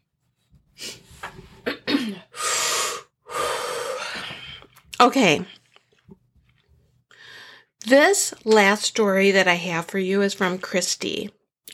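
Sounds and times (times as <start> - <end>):
person blowing nose: 2.3 - 4.2
speech: 5.0 - 5.6, 7.9 - 11.4.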